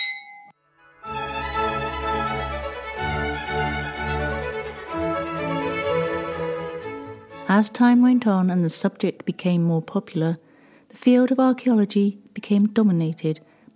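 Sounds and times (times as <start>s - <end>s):
glasses clinking in a toast: 0.0s - 0.5s
music: 0.6s - 8.7s
speech: 7.5s - 10.4s, 11.0s - 13.5s.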